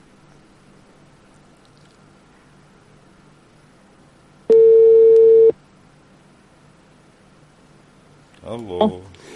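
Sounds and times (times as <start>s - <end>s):
telephone call ringing tone: 4.5s - 5.5s
speech: 8.5s - 9.1s.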